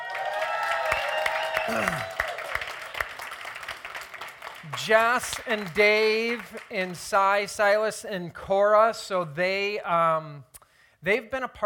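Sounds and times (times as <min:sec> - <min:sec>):
church congregation clapping and cheering: 0:00.0 - 0:07.7
speech: 0:01.7 - 0:02.2, 0:04.7 - 0:11.6.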